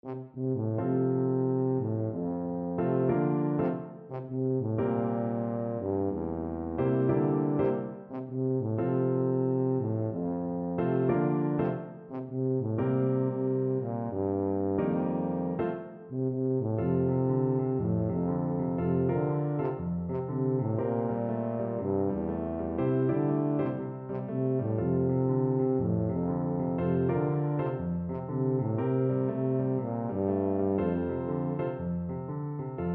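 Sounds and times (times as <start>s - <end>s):
tuba: 0.0s - 32.9s.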